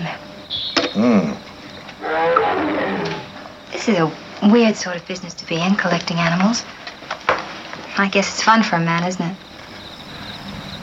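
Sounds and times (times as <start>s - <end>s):
speech: 0.9s - 1.4s, 3.9s - 6.9s, 8.0s - 9.4s
lion roaring: 2.0s - 3.4s.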